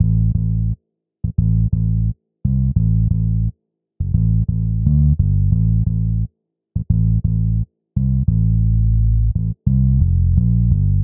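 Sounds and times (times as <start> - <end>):
sleazy bass line at 87 bpm: 0.0 - 11.0.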